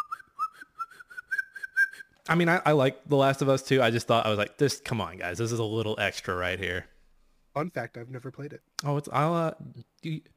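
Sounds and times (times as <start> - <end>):
person whistling a wavering pulsing tone: 0.0 - 2.2
speech: 2.3 - 6.9, 7.6 - 10.3.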